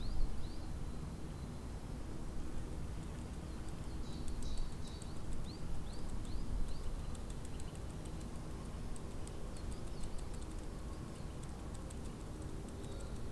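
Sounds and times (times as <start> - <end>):
wind: 0.0 - 13.3
faint ticking clicks: 3.0 - 13.3
small birds chirping in a park in spring: 3.0 - 13.3.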